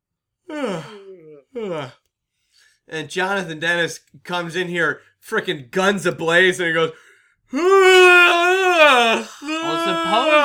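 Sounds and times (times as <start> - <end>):
person yawning: 0.5 - 2.0, 7.5 - 10.4
speech: 1.6 - 2.0, 2.9 - 10.4
exhale: 7.0 - 7.4.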